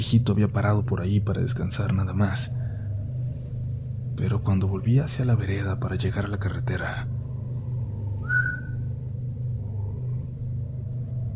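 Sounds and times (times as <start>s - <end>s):
speech: 0.0s - 2.6s, 4.2s - 7.2s
steady low rumble of wind: 0.0s - 11.3s
single short rising whistle from a person: 8.2s - 8.9s.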